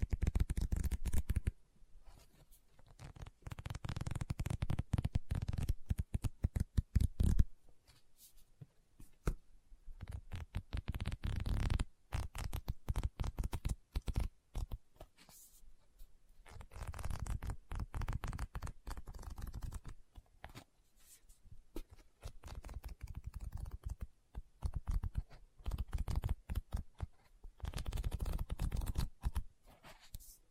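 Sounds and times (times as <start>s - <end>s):
dry tapping and scratching on a book: 0.0s - 1.5s, 2.8s - 7.5s, 10.0s - 15.4s, 16.5s - 20.7s, 21.8s - 30.2s.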